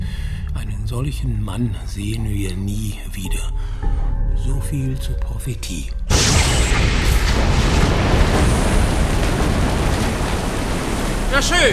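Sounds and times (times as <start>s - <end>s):
speech: 0.9s - 6.0s, 11.3s - 11.7s
explosion: 6.1s - 11.7s.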